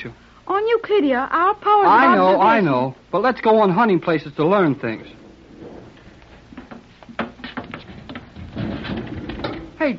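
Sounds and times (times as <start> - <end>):
speech: 0.0 - 5.2
door being pulled open with clunks and rattles: 4.6 - 9.8.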